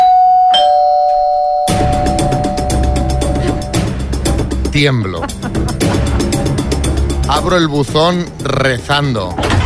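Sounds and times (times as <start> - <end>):
house doorbell electronic chime: 0.0 - 3.8
speech: 4.8 - 5.6, 7.3 - 9.5
laughter: 4.8 - 6.8.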